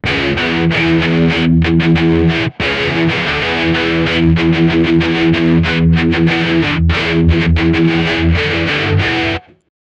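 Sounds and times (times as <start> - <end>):
chunky guitar riff: 0.0 - 9.7.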